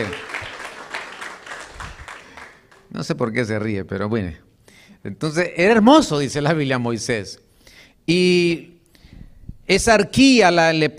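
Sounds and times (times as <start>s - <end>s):
audience applause: 0.0s - 2.9s
speech: 3.0s - 7.4s, 8.0s - 8.7s, 9.7s - 10.9s.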